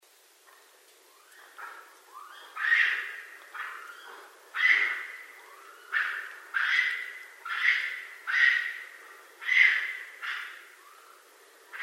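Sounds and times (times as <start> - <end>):
raccoon giving harsh squealing cries: 2.2 - 8.8, 9.4 - 11.0.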